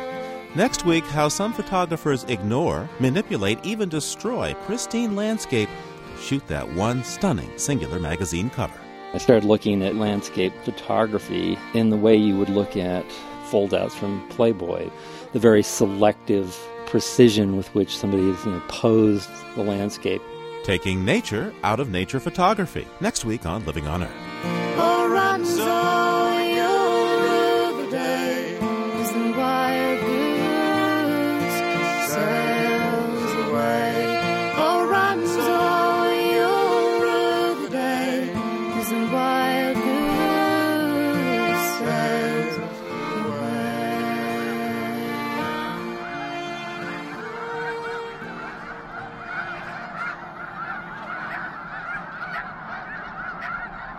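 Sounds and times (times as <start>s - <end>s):
huge flock of snow geese on migration calling: 0.0s - 53.9s
speech: 0.5s - 24.6s.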